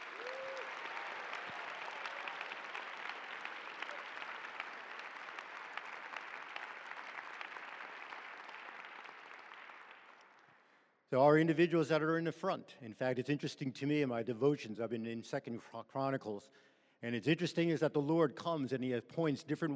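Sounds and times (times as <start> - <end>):
large audience applause for stage tech crew: 0.0 - 10.6
speech: 11.1 - 19.7.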